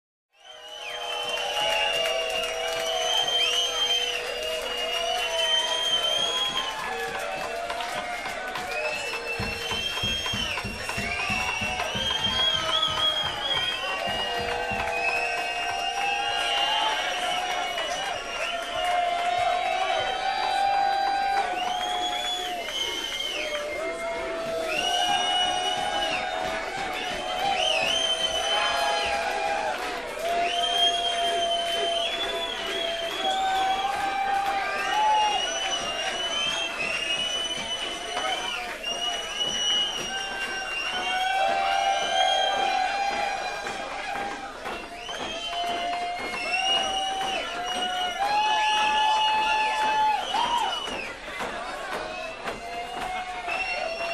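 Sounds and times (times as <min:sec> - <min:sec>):
crowd cheering: 0:00.3 - 0:54.1.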